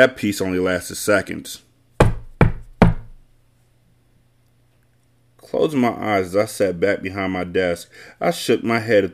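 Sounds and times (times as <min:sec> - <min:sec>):
speech: 0:00.0 - 0:01.7, 0:05.5 - 0:09.1
firm knocking on a door: 0:02.0 - 0:03.2.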